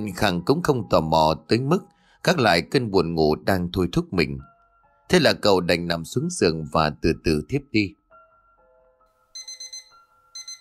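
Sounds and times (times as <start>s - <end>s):
speech: 0.0s - 4.5s, 5.1s - 8.0s
alarm clock beeping with bright rapid electronic beeps: 9.3s - 10.5s.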